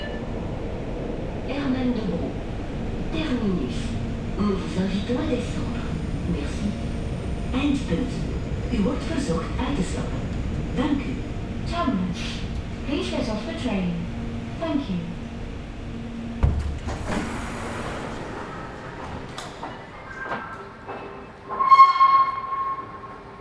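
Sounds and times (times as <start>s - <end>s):
rumbling metro station platform noise: 0.0s - 21.7s
people talking on a metro platform: 1.4s - 2.4s, 3.1s - 6.8s, 7.5s - 15.2s
metro train doors clunking and hissing open at a station: 16.4s - 21.6s.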